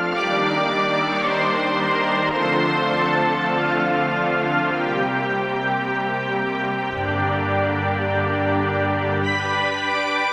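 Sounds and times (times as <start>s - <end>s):
Korg DSS-1 synth strings playing legato: 0.2s - 10.2s.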